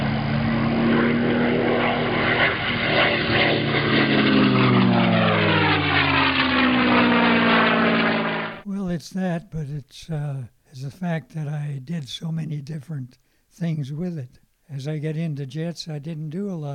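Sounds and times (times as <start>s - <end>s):
P-51 Mustang propeller engine roaring as the plane sweeps past: 0.0s - 8.7s
speech: 9.0s - 16.7s.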